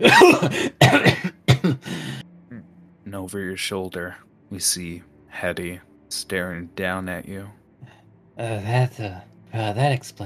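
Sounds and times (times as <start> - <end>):
speech: 0.0 - 0.8, 3.3 - 7.6, 8.4 - 10.2
person coughing hard after breathing smoke and ashes: 0.0 - 2.2
short gasping breaths: 1.8 - 2.2.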